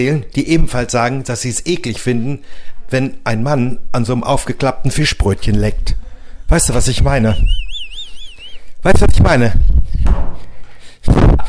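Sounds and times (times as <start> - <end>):
speech: 0.0 - 7.6, 8.8 - 10.4, 11.0 - 11.3
heavy low thumps of someone falling off a chair: 9.6 - 10.6.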